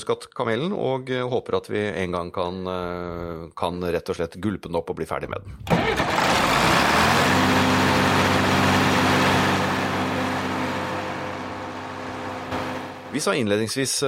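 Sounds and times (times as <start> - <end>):
speech: 0.0 - 6.7, 13.1 - 14.0
old Ford tractor engine idling: 5.6 - 13.2.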